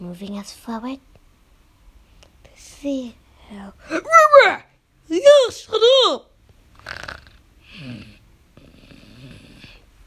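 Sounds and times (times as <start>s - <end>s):
speech: 0.0s - 1.1s, 2.6s - 7.0s
dog snoring: 6.8s - 9.9s.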